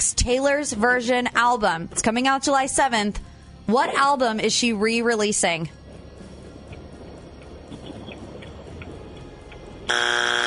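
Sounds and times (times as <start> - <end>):
speech: 0.1 - 5.8
electronic game show buzzer: 9.9 - 10.4.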